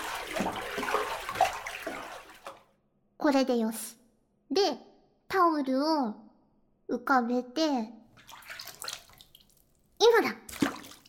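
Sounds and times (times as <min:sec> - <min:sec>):
bathwater in a tub sloshing as hands push bath foam aside: 0:00.0 - 0:02.7, 0:08.1 - 0:11.0
speech: 0:03.2 - 0:06.2, 0:06.9 - 0:08.0, 0:10.0 - 0:10.4.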